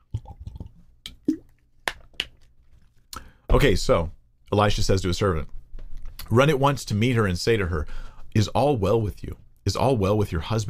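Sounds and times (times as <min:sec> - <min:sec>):
person gulping and swallowing water: 0:00.0 - 0:01.6
speech: 0:03.6 - 0:05.6, 0:06.3 - 0:10.6.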